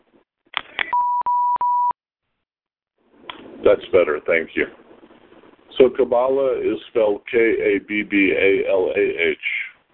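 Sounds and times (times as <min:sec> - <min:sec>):
electronic phone tone from pressing star 6: 0:00.9 - 0:02.0
speech: 0:03.6 - 0:04.8, 0:05.8 - 0:09.6.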